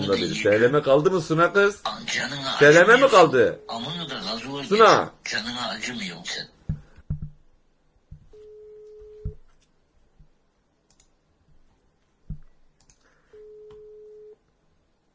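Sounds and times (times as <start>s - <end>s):
speech: 0.0s - 6.5s
telephone busy tone: 8.4s - 9.4s, 13.4s - 14.4s
soft clicks and taps: 8.9s - 13.1s.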